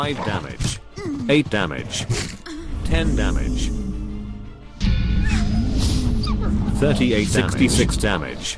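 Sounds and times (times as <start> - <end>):
speech: 0.0 - 3.8, 6.8 - 8.5
wolf whimpering in a game: 5.2 - 6.7.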